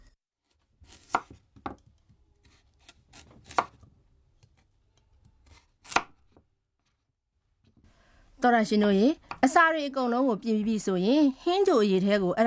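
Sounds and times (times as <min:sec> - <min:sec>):
sharp knife chopping onions and potatoes on a cutting board: 0:00.8 - 0:06.4
speech: 0:08.4 - 0:12.4.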